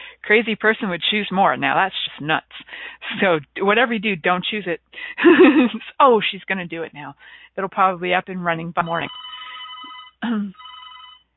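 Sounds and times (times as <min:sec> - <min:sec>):
speech: 0:00.3 - 0:09.3, 0:10.2 - 0:10.6
telephone ringing with a bright electronic trill: 0:08.9 - 0:11.3.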